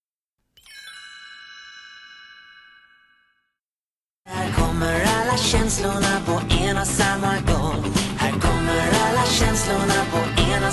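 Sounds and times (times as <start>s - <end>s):
bright chime: 0.6s - 3.6s
Swedish-language pop song with full band: 4.3s - 10.7s
speech: 5.4s - 8.0s.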